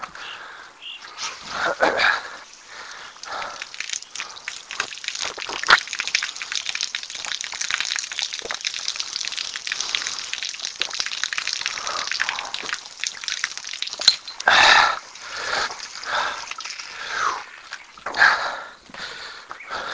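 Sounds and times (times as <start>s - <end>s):
water dripping: 0.0s - 19.9s
water gushing and splashing into a glass or bottle: 1.1s - 18.6s
small clinks of a glass or bottle: 14.0s - 14.5s.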